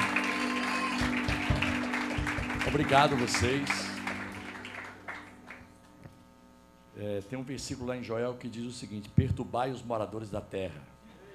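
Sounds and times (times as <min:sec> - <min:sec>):
audience clapping for a music team: 0:00.0 - 0:05.8
faint hum: 0:00.0 - 0:11.3
speech: 0:02.6 - 0:03.9, 0:07.0 - 0:10.9.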